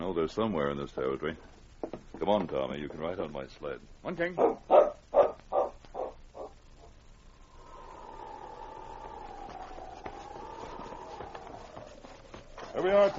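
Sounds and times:
speech: 0.2s - 4.9s, 12.8s - 13.1s
husky dogs barking: 4.4s - 6.9s
long wavering husky howl: 7.3s - 12.8s.

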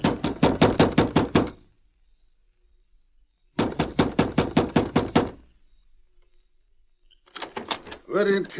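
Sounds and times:
loud knocking on a wooden door: 0.0s - 1.6s, 3.6s - 5.4s
speech: 8.1s - 8.5s.

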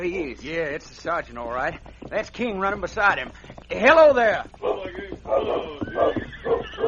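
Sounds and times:
speech: 0.0s - 6.8s
horse neighing as a rider comes into town: 4.6s - 6.8s.

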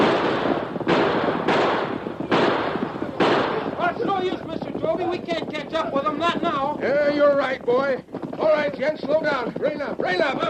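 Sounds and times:
gunshots in a radio drama during a horseback chase: 0.0s - 4.8s
speech: 5.9s - 10.4s.

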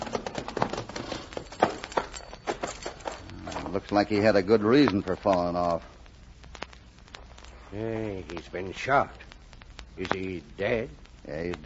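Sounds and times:
horse hooves clip-clopping: 0.0s - 4.3s
speech: 3.7s - 5.9s, 7.7s - 9.2s, 10.0s - 11.6s.

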